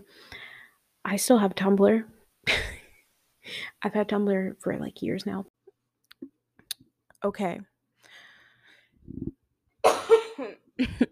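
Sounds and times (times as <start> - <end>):
speech: 1.1 - 2.7, 3.8 - 5.6, 7.2 - 7.7, 9.1 - 9.4, 10.8 - 11.1
soft low throat sound: 9.0 - 9.4
person coughing: 9.8 - 10.6.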